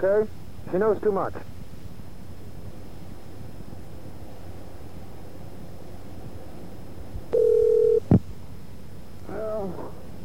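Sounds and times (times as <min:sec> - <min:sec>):
speech: 0:00.0 - 0:01.5
telephone tone: 0:07.3 - 0:08.0.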